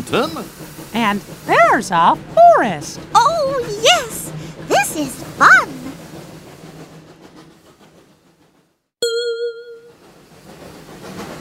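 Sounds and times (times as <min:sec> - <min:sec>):
train clattering along rails: 0:00.0 - 0:11.3
speech: 0:00.1 - 0:04.2, 0:05.0 - 0:05.8
loud ringing bell-like ding: 0:09.0 - 0:09.9.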